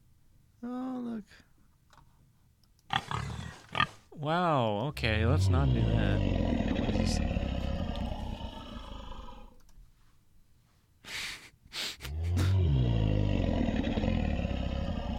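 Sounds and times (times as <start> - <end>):
speech: 0.6 - 1.5, 4.2 - 7.4
deep lion roar: 2.9 - 4.0, 5.0 - 9.6, 12.1 - 15.1.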